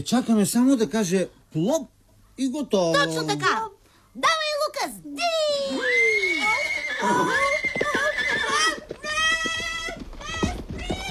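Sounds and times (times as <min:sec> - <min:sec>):
speech: 0:00.0 - 0:06.0, 0:07.0 - 0:07.5
horse neighing: 0:05.7 - 0:09.4
horse snorting: 0:06.9 - 0:08.8.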